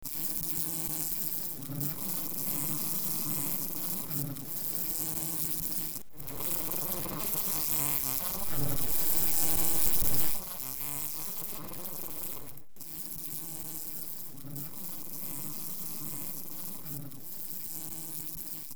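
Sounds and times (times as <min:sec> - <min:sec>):
flies buzzing: 0:00.6 - 0:18.7.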